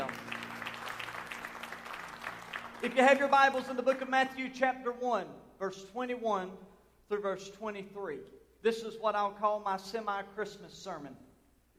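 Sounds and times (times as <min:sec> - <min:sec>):
audience applause: 0:00.0 - 0:03.4
speech: 0:02.8 - 0:11.3.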